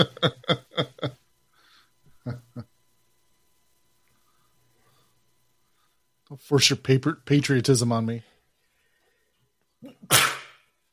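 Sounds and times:
speech: 0.0 - 0.9, 6.3 - 8.3
sharp sneeze with a breathy intake: 9.8 - 10.8.

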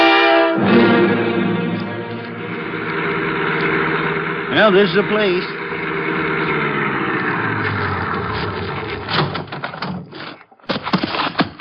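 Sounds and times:
car engine idling after pulling up at a house: 0.6 - 10.1
speech: 4.6 - 5.6
sharp clunks and knocks: 8.4 - 11.5.

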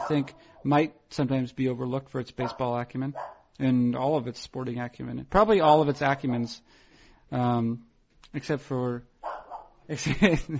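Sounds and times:
dog barking at something down the street: 0.0 - 0.7, 2.4 - 3.5, 6.2 - 6.7, 9.2 - 9.8
speech: 0.1 - 9.1, 9.9 - 10.5
laughter: 10.0 - 10.5.

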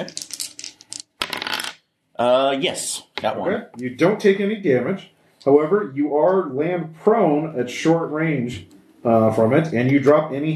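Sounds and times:
speech: 0.0 - 0.2, 2.2 - 10.5
two dice clattering across a hard tabletop: 0.0 - 1.8.

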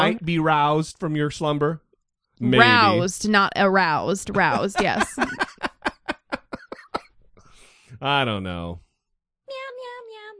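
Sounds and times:
speech: 0.0 - 1.8, 2.4 - 5.6, 8.0 - 8.8
laughter: 2.5 - 3.1, 4.2 - 7.0
person imitating a cat with nasal meowing voice: 2.6 - 3.1.

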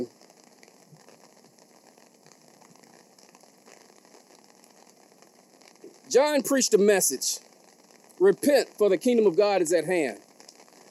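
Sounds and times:
light rain pattering on surfaces outdoors: 0.0 - 10.8
speech: 6.1 - 7.5, 8.2 - 10.2.

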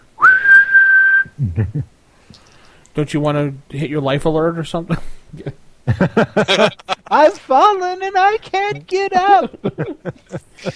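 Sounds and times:
whistle blown by someone lying on the ground: 0.2 - 1.4
laughter: 1.4 - 1.9, 5.4 - 7.4, 8.2 - 10.7
speech: 1.4 - 10.7.

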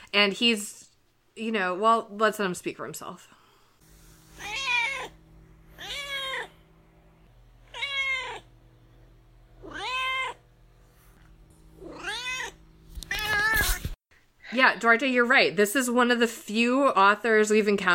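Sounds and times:
speech: 0.1 - 0.8, 1.4 - 3.4, 14.6 - 17.9
cat meowing: 4.4 - 5.2, 5.8 - 6.5, 7.7 - 8.5, 9.6 - 10.4, 11.8 - 13.8.

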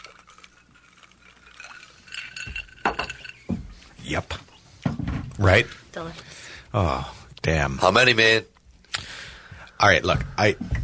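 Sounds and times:
glasses of barrel-aged Old Fashioned clinking in a toast: 0.0 - 4.0
speech: 4.1 - 4.5, 5.4 - 8.5, 9.8 - 10.8.

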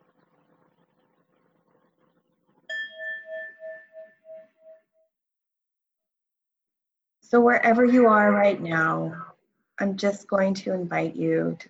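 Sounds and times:
singing bell struck in sound therapy: 2.7 - 5.1
speech: 7.3 - 9.2, 9.8 - 11.6.

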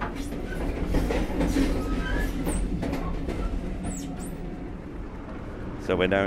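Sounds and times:
train wheels clattering over diamond crossings: 0.0 - 5.5
train rumbling: 0.0 - 6.2
high metallic squeals: 0.1 - 4.6
speech: 5.9 - 6.2.

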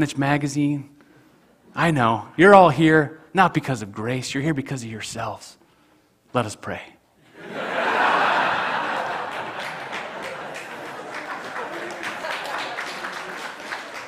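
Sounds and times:
speech: 0.0 - 1.0, 1.8 - 5.6, 6.3 - 7.7
scattered laughter: 7.3 - 14.0
room full of people applauding: 7.8 - 14.0.

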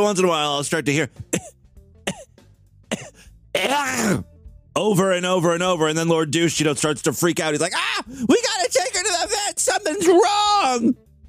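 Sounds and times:
speech: 0.0 - 1.6, 3.6 - 11.2
person imitating the cough of an old dog with heart failure: 1.3 - 2.3, 2.9 - 4.2.

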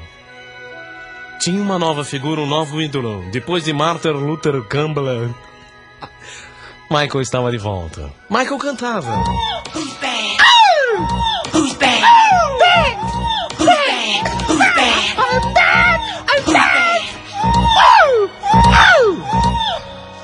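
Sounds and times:
speech: 1.4 - 10.0
voice mimicking a singer's high-pitched scream with swooping shrieks: 10.4 - 19.9
laughter: 11.6 - 16.6.

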